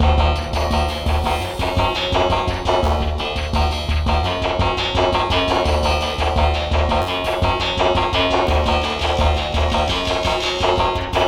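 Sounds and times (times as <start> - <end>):
FM synthesized percussion: 0.0 - 11.2.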